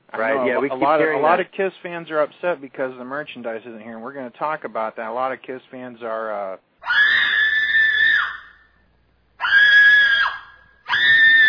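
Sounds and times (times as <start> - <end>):
speech: 0.2 - 7.0
long shrill screams: 6.8 - 8.8, 9.4 - 11.4.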